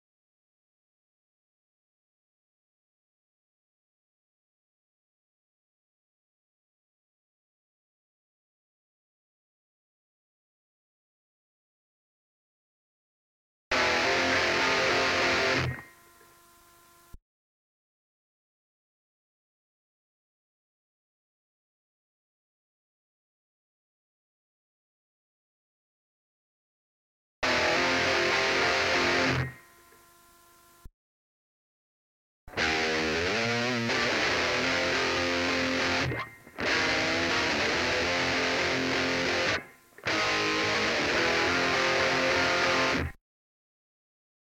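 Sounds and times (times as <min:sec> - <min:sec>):
guitar playing: 0:13.8 - 0:15.8, 0:27.4 - 0:29.6, 0:32.5 - 0:43.2.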